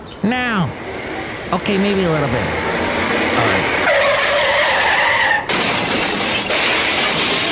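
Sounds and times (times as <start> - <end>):
speech: 0.3 - 0.8, 1.5 - 2.6, 3.4 - 3.8
car tires squealing in a long skid: 0.7 - 7.5
car crashing: 3.7 - 7.5
rattling and crunching crash aftermath: 5.4 - 7.5.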